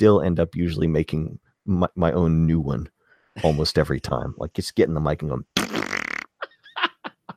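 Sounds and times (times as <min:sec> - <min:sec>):
speech: 0:00.0 - 0:05.7
buzzy sputtering fart sound effect: 0:05.6 - 0:06.4.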